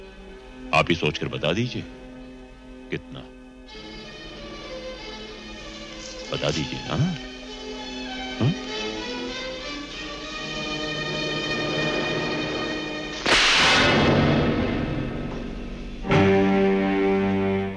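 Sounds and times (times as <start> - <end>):
dramatic orchestral music: 0.5 - 17.7
speech: 0.8 - 2.0, 2.9 - 3.9, 6.3 - 7.3, 8.4 - 8.7
slap across the face: 13.2 - 13.9
heavy hit: 13.2 - 16.6.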